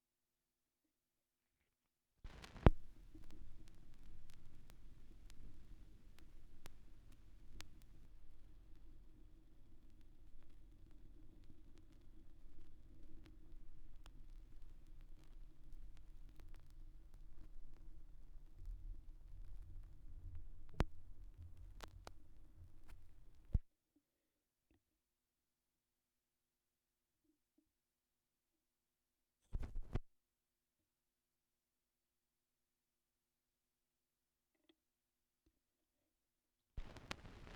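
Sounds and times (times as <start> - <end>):
vinyl record noise: 2.3 - 23.6, 36.8 - 37.5.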